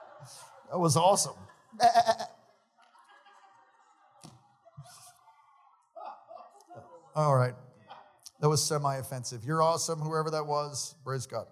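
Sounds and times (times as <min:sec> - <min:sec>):
laughter: 0:00.0 - 0:05.1, 0:06.0 - 0:08.1
speech: 0:00.2 - 0:02.2, 0:07.2 - 0:07.6, 0:08.4 - 0:11.5
person making a wavering goat-like bleat: 0:01.8 - 0:02.3.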